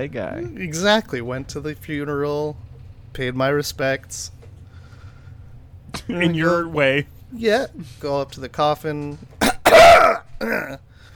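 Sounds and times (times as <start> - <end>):
speech: 0.0 - 4.4, 5.9 - 9.4, 10.4 - 10.9
person coughing raspy: 9.4 - 10.8.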